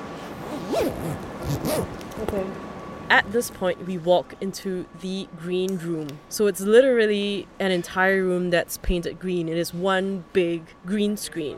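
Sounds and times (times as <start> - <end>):
zipper being zipped up: 0.2 - 1.9
speech: 0.9 - 11.5.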